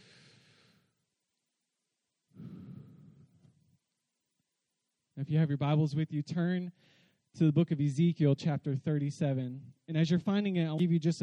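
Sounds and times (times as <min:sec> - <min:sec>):
person breathing in and out slowly: 0:00.0 - 0:01.0, 0:02.3 - 0:03.6, 0:06.8 - 0:07.2
speech: 0:05.2 - 0:11.2.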